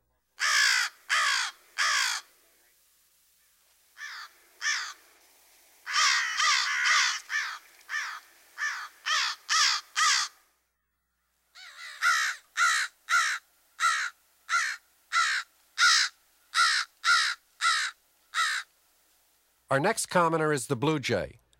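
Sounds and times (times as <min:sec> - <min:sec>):
crow cawing loudly: 0:00.4 - 0:02.4, 0:04.0 - 0:05.0, 0:05.8 - 0:10.4, 0:11.5 - 0:18.7
speech: 0:19.7 - 0:21.4.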